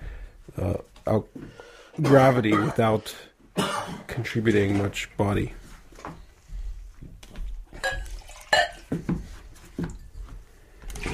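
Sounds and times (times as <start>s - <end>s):
speech: 0.5s - 1.3s, 2.0s - 5.6s
bright clinks and ringing taps of glass: 7.8s - 8.8s
water sloshing and splashing inside a drinking glass: 7.8s - 9.2s.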